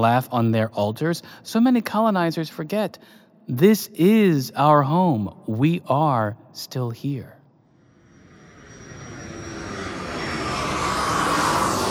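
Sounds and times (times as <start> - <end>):
speech: 0.0 - 7.4
jet plane roaring overhead: 7.8 - 11.8.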